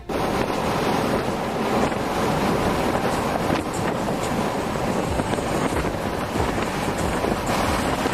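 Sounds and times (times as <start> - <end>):
strong wind gusts across an open bridge in France: 0.0 - 8.1.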